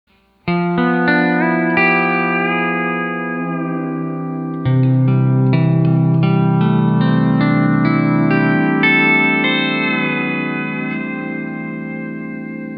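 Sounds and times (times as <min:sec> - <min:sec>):
pedal steel guitar playing D13 13b9 and major 9th chords: 0:00.4 - 0:12.7.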